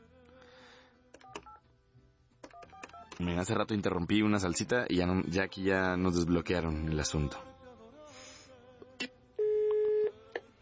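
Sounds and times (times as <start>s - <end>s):
speech: 3.2s - 7.5s
telephone call tone as a call goes to voicemail: 9.4s - 10.4s.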